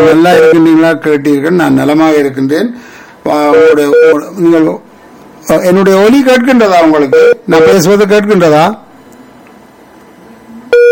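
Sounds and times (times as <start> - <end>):
call-waiting beep on a phone line: 0.0 - 0.8, 3.5 - 4.3, 7.1 - 7.8, 10.7 - 10.9
speech: 0.1 - 4.9, 5.5 - 8.8.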